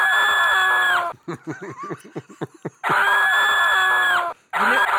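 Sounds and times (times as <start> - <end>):
boy and girl screaming together in high-pitched bursts: 0.0 - 1.1, 2.9 - 4.8
laughter: 0.9 - 3.2.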